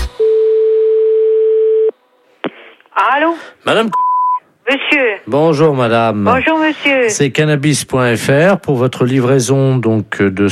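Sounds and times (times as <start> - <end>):
telephone busy tone after hanging up: 0.2 - 2.0
speech: 3.0 - 4.0, 4.7 - 10.5.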